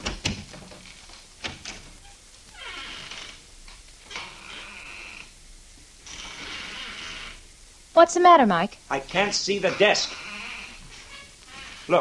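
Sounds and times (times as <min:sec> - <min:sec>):
office door hinges creaking and scraping: 0:00.0 - 0:03.4, 0:04.0 - 0:05.4, 0:06.0 - 0:07.4, 0:09.1 - 0:12.0
speech: 0:08.0 - 0:10.2.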